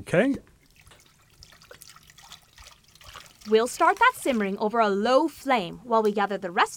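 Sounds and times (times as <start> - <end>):
speech: 0.0 - 0.5, 3.5 - 6.7
salt water pouring into a cauldron with splashing and bubbling gurgles: 0.6 - 4.6.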